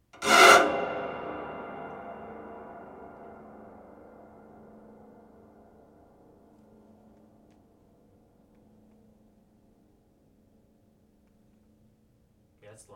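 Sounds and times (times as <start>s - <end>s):
stab scrapes: 0.2s - 4.7s.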